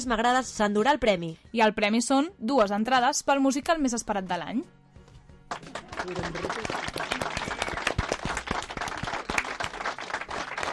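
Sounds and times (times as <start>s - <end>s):
speech: 0.0s - 4.8s, 5.5s - 7.2s
crowd applause: 5.5s - 10.7s.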